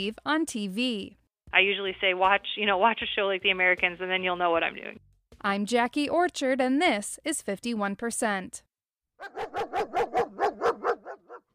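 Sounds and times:
speech: 0.0 - 10.8
two-year-old German shepherd sheriff's canine barking while tracking a scent: 9.2 - 11.5.

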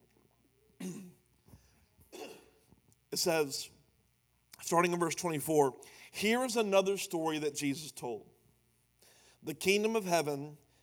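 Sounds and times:
person coughing: 0.8 - 1.2, 2.1 - 2.6
speech: 3.2 - 3.8, 4.7 - 8.3, 9.4 - 10.6.

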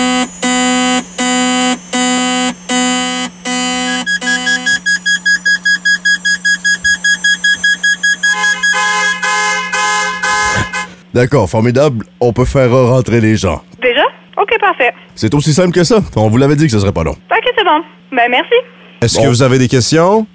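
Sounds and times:
fire station alarm short sharp beeps over a telephone line: 0.0 - 10.9
fire station alarm buzzing tones heard over a telephone line: 0.0 - 11.1
speech: 11.2 - 20.3.

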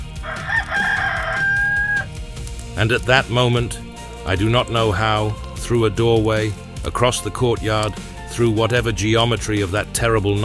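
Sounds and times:
rooster crowing: 0.0 - 2.1
low rhythmic background: 0.0 - 10.4
speech: 2.8 - 10.4.

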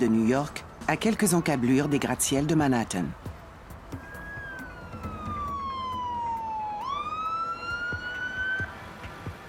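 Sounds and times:
speech: 0.0 - 3.3
low rumble of city traffic: 0.0 - 9.4
ambulance siren wailing: 4.0 - 9.0.

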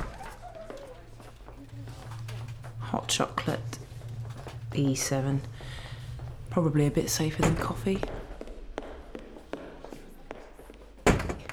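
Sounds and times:
door shutting with a thud: 0.0 - 8.4, 11.0 - 11.5
quick light footsteps: 0.0 - 11.5
speech: 2.9 - 3.8, 4.7 - 5.8, 6.6 - 8.2.

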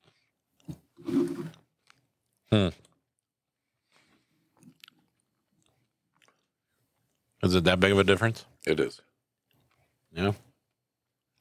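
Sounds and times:
biting and chewing an Oreo cookie: 0.0 - 0.9, 1.5 - 7.4, 9.4 - 11.3
speech: 2.5 - 2.8, 7.5 - 9.1, 10.1 - 10.5.

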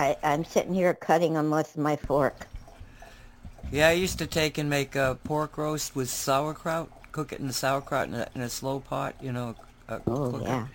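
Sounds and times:
speech: 0.0 - 2.5, 3.6 - 10.7
dog lapping and splashing drinking water: 2.2 - 10.7.

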